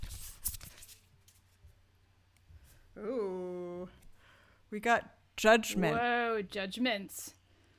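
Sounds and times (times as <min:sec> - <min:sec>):
tarot deck being shuffled: 0:00.0 - 0:01.6
speech: 0:04.7 - 0:07.4.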